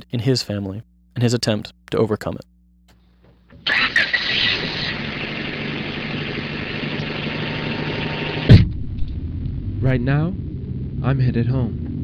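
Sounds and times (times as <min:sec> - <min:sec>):
speech: 0:00.0 - 0:02.5, 0:09.8 - 0:11.9
car engine humming during a drive home from a school: 0:02.8 - 0:08.5.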